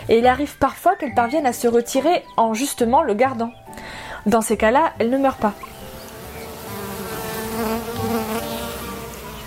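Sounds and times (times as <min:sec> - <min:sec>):
speech: 0:00.1 - 0:05.7
honeybee buzzing: 0:05.0 - 0:09.4.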